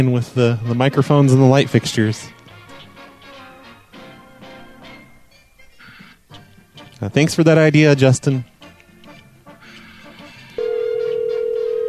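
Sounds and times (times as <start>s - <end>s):
speech: 0.0s - 2.4s, 7.0s - 8.5s
steady telephone tone: 10.6s - 11.8s.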